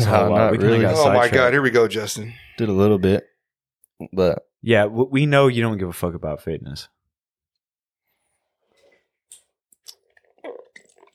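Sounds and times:
speech: 0.0s - 3.3s, 4.0s - 7.0s
person sipping a soda: 9.9s - 11.1s.

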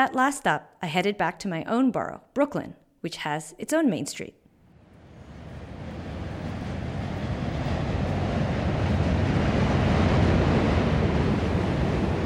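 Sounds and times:
speech: 0.0s - 4.4s
subway trains rumbling over the Manhattan Bridge in Brooklyn, New York City: 4.7s - 12.2s.

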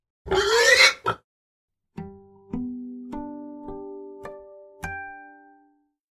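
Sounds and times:
pig grunting and snorting: 0.3s - 1.2s.

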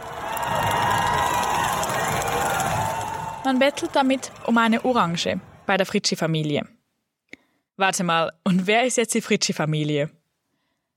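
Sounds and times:
dense carnival crowd roaring and shouting: 0.0s - 5.7s
speech: 3.5s - 6.8s, 7.8s - 10.2s.

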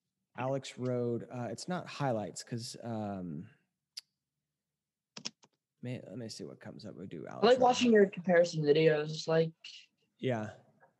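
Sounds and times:
speech: 0.4s - 3.6s, 5.8s - 10.6s
computer clicks while someone types a search: 5.2s - 5.6s.

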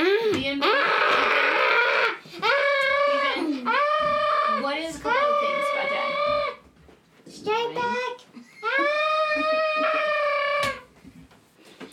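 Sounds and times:
child imitating a screaming crying baby: 0.0s - 6.6s, 8.4s - 10.9s
speech: 0.3s - 0.6s.

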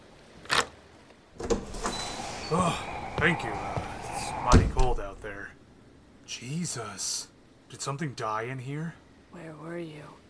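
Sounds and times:
door being opened: 1.4s - 5.4s
speech: 2.5s - 3.8s, 4.4s - 5.6s, 6.3s - 10.2s.

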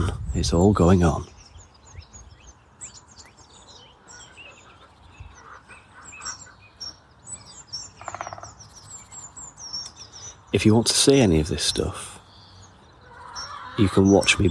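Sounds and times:
outdoor birdsong with chirps and tweets: 0.0s - 14.5s
speech: 0.4s - 1.3s, 10.6s - 12.1s, 13.8s - 14.5s
woodpecker knocking: 7.9s - 8.7s.

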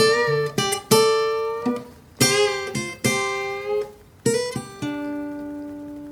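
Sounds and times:
country guitar lick played around a G chord high on the neck: 0.0s - 6.0s.

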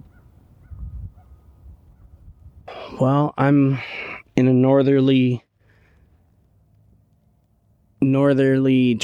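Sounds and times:
faint crow caws: 0.0s - 2.2s
steady low rumble of wind: 0.0s - 9.0s
speech: 2.9s - 5.5s, 8.0s - 9.0s.

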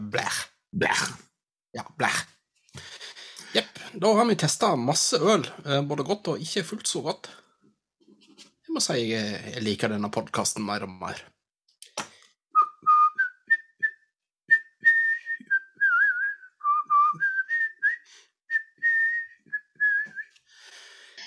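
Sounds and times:
speech: 0.1s - 2.9s, 3.5s - 7.4s, 8.7s - 11.4s
person whistling a melodic tune: 12.6s - 20.3s.

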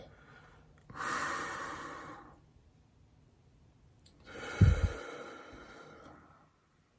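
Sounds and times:
big deep cleansing breath during a guided relaxation exercise: 0.0s - 2.4s, 4.2s - 6.5s.

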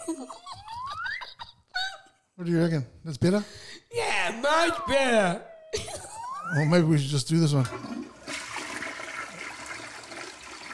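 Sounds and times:
speech: 0.1s - 0.6s, 2.4s - 5.8s, 6.5s - 7.9s
toilet flushing: 7.5s - 10.7s.

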